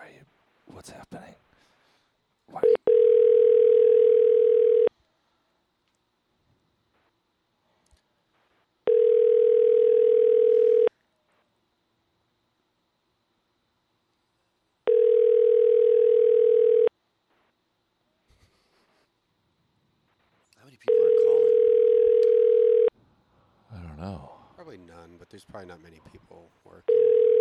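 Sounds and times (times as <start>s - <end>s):
speech: 0.8s - 1.4s, 25.6s - 27.2s
telephone ringback tone heard down the line: 2.8s - 4.9s, 8.9s - 10.9s, 14.9s - 16.9s, 20.9s - 22.9s, 26.9s - 27.3s.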